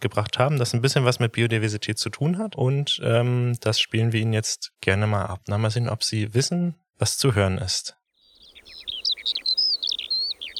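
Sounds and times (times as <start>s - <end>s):
speech: 0.0s - 8.0s
skylark singing: 8.2s - 10.5s.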